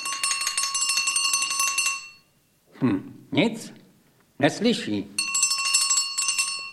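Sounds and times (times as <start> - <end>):
small bell ringing: 0.0 - 2.4, 5.2 - 6.7
speech: 2.8 - 3.8, 4.4 - 5.2.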